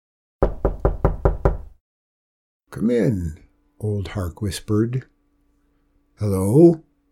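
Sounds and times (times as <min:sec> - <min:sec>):
knocking on a door: 0:00.4 - 0:01.8
speech: 0:02.7 - 0:05.1, 0:06.2 - 0:06.9.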